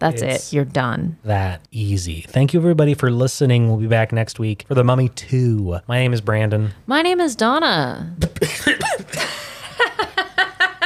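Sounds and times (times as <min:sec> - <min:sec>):
speech: 0:00.0 - 0:09.5
person coughing and sputtering after choking: 0:08.2 - 0:09.7
laughter: 0:09.0 - 0:10.8.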